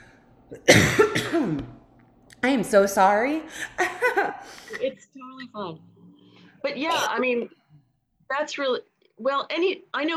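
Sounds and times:
person coughing harshly: 0.5s - 1.8s
speech: 0.5s - 1.8s, 2.4s - 5.9s, 6.6s - 7.6s, 8.3s - 10.1s.

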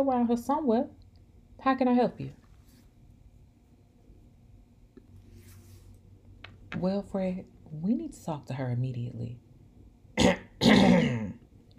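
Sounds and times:
speech: 0.0s - 1.0s, 1.6s - 2.4s, 6.7s - 9.4s
woman clearing her throat: 10.2s - 11.4s.

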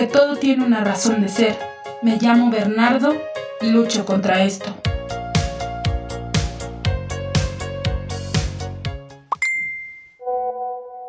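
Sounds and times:
speech: 0.0s - 4.9s
rhythmic music: 0.0s - 9.3s
message notification chime on a phone: 9.3s - 10.9s.

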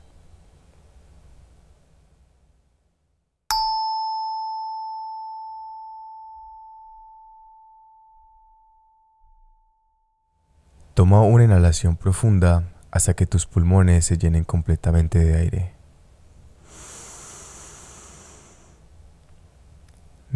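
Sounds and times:
meditation bell ringing: 3.5s - 10.0s
speech: 11.0s - 15.8s.

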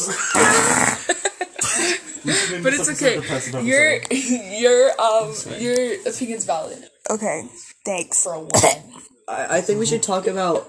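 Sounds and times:
speech: 0.0s - 0.4s, 1.9s - 10.6s
wet sputtering raspberries blown with the mouth to imitate farts: 0.3s - 1.1s.

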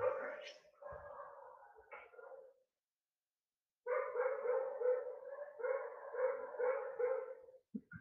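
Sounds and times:
dog barking: 0.0s - 2.6s, 3.9s - 7.6s.

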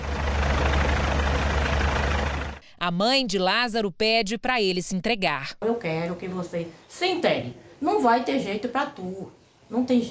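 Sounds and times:
military police and fire department helicopters flying low over scrubland: 0.0s - 2.7s
speech: 2.8s - 10.0s.

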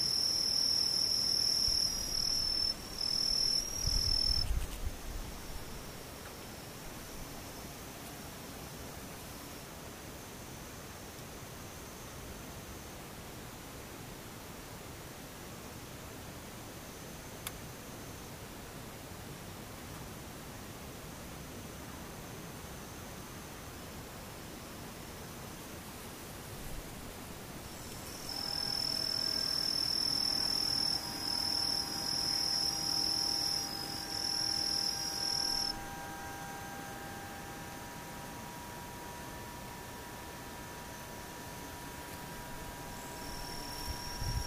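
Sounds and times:
high shrill insect trill: 0.0s - 8.0s, 27.3s - 44.4s
insects buzzing in the daytime: 0.0s - 12.8s, 24.9s - 44.4s
steady hissing background: 0.0s - 44.4s.

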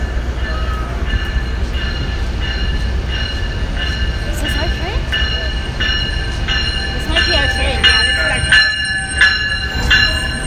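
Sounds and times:
rhythmic rail clicks: 0.0s - 10.4s
train arriving at a station: 0.0s - 10.4s
high metallic train wheel squeals and screeches: 5.9s - 10.4s.

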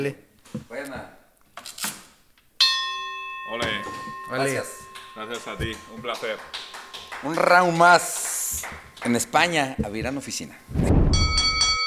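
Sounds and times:
speech: 0.0s - 1.1s, 3.5s - 6.6s, 7.2s - 10.9s
bell struck with a sharp bright clang: 2.6s - 10.4s, 11.2s - 11.8s.

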